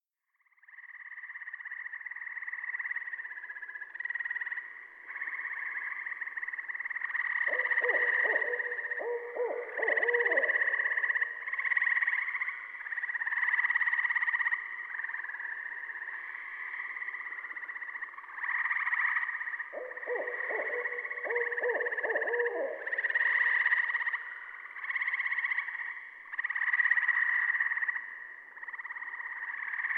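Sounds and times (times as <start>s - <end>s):
Gray Treefrog calling: 0.4s - 29.9s
Saw-whet Owl calling: 7.5s - 11.4s, 19.7s - 23.5s.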